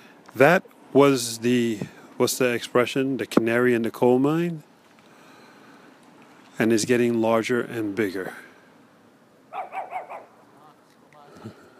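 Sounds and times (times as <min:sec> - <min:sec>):
speech: 0:00.4 - 0:04.7, 0:06.6 - 0:08.5
neighborhood dog barking: 0:09.5 - 0:10.4.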